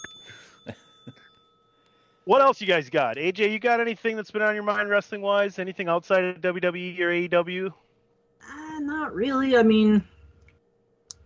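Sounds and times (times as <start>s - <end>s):
bell ringing with a sustained metallic tone: 0.0s - 3.0s
speech: 2.3s - 7.8s, 8.8s - 10.1s.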